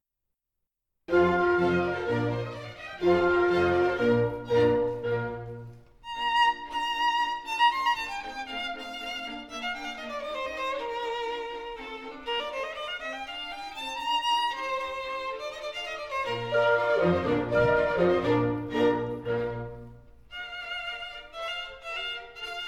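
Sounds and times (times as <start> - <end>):
violin concerto in B flat: 1.1 - 22.6.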